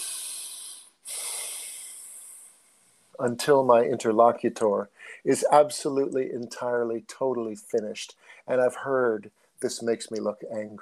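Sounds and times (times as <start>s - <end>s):
deep breathing through the nose: 0.0s - 3.2s, 5.0s - 5.3s, 8.2s - 8.5s
speech: 3.2s - 10.8s.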